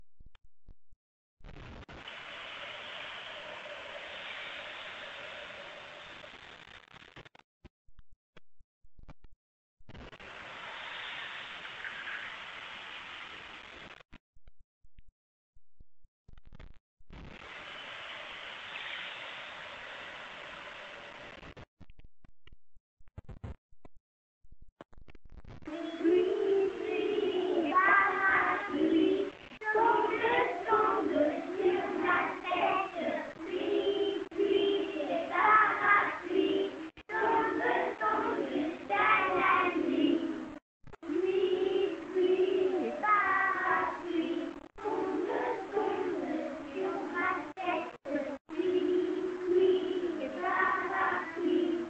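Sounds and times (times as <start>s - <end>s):
school choir singing a song about rain: 25.7s - 51.8s.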